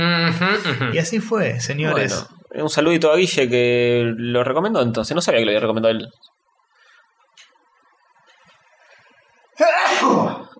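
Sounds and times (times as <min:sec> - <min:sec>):
speech: 0:00.3 - 0:06.4, 0:09.6 - 0:10.3
person sneezing: 0:09.6 - 0:10.5.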